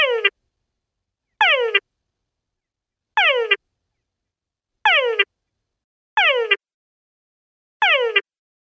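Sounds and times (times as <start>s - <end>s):
forest frog calling: 0.0s - 0.4s, 1.4s - 1.8s, 3.2s - 3.6s, 4.9s - 5.3s, 6.2s - 6.6s, 7.8s - 8.2s.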